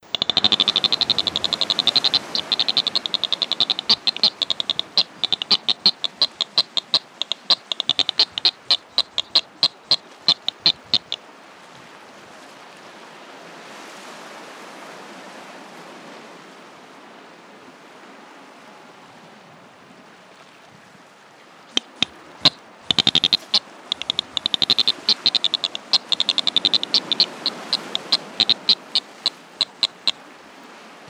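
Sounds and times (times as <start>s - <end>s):
thin-billed albatross call: 0.0s - 11.2s, 21.7s - 30.2s.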